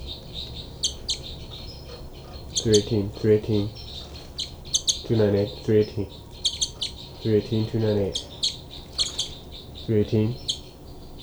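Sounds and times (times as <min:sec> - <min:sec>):
two birds calling: 0:00.0 - 0:11.2
speech: 0:02.6 - 0:03.8, 0:05.1 - 0:06.2, 0:07.2 - 0:08.3, 0:09.9 - 0:10.5.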